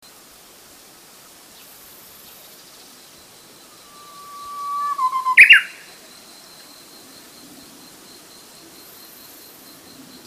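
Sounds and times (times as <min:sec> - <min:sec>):
Japanese bush warbler singing a whistle with a two-note ending: 0:01.5 - 0:07.0.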